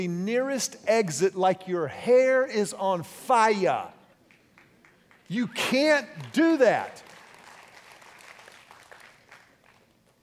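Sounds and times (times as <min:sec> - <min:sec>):
speech: 0:00.0 - 0:04.0, 0:05.3 - 0:07.1
audience applause: 0:06.2 - 0:09.8.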